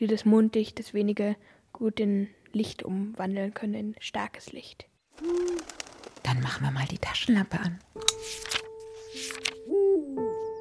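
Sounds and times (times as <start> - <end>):
speech: 0.0 - 8.6
owl hooting: 5.2 - 6.2
rustling: 5.2 - 9.6
sharp clicks: 7.8 - 8.2.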